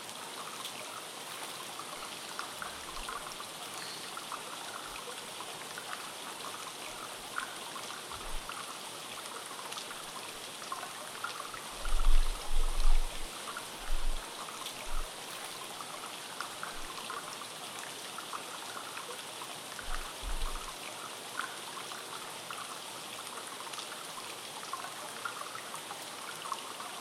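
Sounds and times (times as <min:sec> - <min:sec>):
hot spring bath water trickling outdoors in cool air: 0:00.0 - 0:26.9
soft low bumps: 0:11.8 - 0:14.2.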